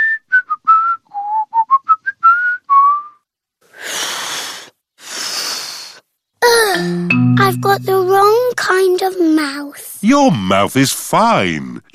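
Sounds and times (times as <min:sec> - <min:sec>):
person whistling a bouncy tune through pursed lips: 0:00.0 - 0:03.2
speech: 0:07.5 - 0:11.9.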